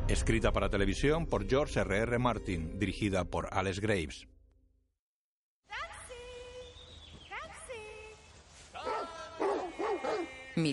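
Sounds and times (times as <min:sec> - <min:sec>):
speech: 0:00.1 - 0:04.3, 0:10.6 - 0:10.7
two hunting dogs barking and yelping while running through a forest: 0:08.8 - 0:10.5.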